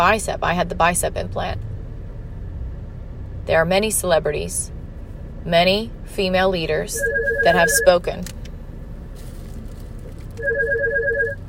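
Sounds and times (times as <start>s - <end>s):
speech: 0.0s - 1.7s, 3.4s - 4.8s, 5.4s - 8.4s
low hum: 0.0s - 11.4s
phone ringing with an incoming call from a doctor's office: 6.9s - 8.0s, 10.4s - 11.4s.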